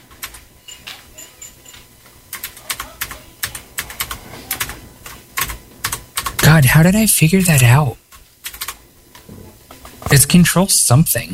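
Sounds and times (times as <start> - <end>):
typing on a computer keyboard: 0.1 - 0.4, 2.3 - 6.4, 8.1 - 8.8
speech: 6.6 - 8.0, 10.2 - 11.3.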